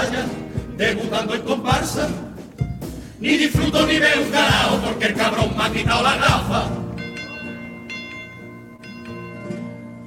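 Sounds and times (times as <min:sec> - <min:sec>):
speech: 0:00.2 - 0:02.4, 0:03.2 - 0:06.9
alarm bell ringing: 0:06.9 - 0:10.0.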